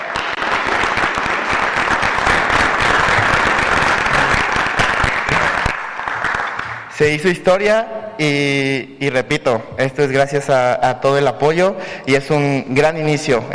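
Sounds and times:
sustained applause from a large crowd: 0.0s - 6.9s
speech: 7.0s - 13.5s.

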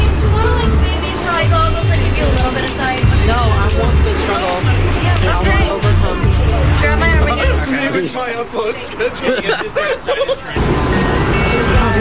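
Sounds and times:
vehicle engine drone: 0.0s - 7.8s, 10.6s - 11.9s
people chattering indistinctly: 0.0s - 11.9s
street traffic rumble: 0.0s - 11.9s
laughter: 6.5s - 10.7s.

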